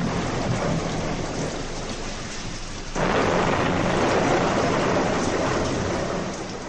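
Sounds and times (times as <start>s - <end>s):
heavy downpour in a thunderstorm: 0.0s - 6.6s
low rumbling thunder: 0.0s - 6.6s.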